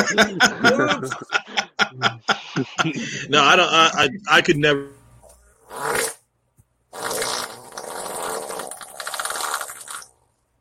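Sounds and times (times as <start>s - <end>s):
laughter: 0.0s - 3.3s
speech: 0.0s - 5.0s, 5.7s - 6.1s
loud sputtering fart sound effect: 5.6s - 6.2s, 6.9s - 10.2s.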